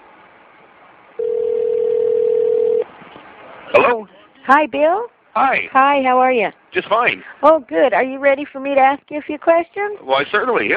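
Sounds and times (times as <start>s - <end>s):
telephone ringing over a phone line: 1.2s - 2.8s
speech: 3.9s - 10.7s.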